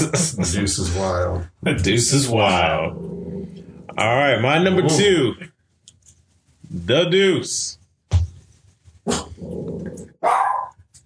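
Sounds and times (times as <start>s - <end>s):
speech: 0.0s - 5.5s, 6.7s - 7.8s
dog low rumbling growl: 2.4s - 5.0s, 9.1s - 10.2s
dog barking: 10.2s - 10.8s.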